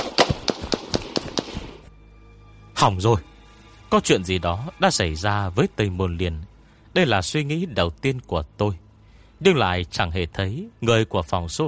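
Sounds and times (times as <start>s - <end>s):
sharp gunshots near a cave entrance: 0.0s - 1.8s
speech: 2.8s - 3.3s, 3.9s - 8.8s, 9.4s - 11.6s.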